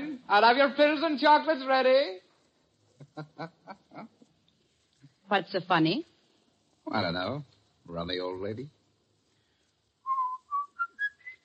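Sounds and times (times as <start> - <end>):
speech: 0.3 - 2.2, 3.2 - 4.1, 5.3 - 6.1, 6.9 - 8.8
person whistling a song: 10.1 - 11.4.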